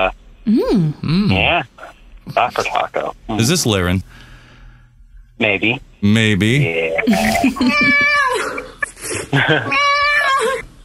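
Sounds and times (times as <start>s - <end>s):
speech: 0.0s - 4.3s, 5.4s - 8.2s, 9.3s - 9.9s
cat meowing loudly and excitedly: 7.6s - 8.6s, 9.7s - 10.6s.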